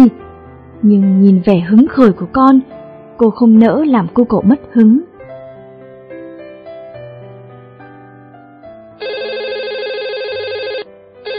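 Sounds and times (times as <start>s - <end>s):
speech: 0.8s - 5.1s
landline telephone ringing with warbling electronic trill at home: 9.0s - 11.3s.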